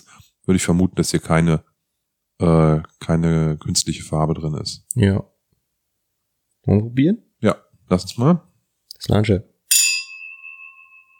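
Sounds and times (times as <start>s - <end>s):
speech: 0.0s - 1.7s, 2.4s - 5.3s, 6.6s - 9.5s
glasses clinking in a toast: 9.7s - 11.1s.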